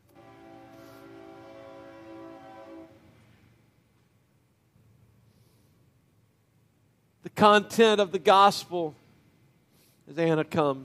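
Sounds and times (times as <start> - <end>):
passing train horn blast: 0.0 - 3.6
speech: 7.3 - 9.0, 10.1 - 10.8.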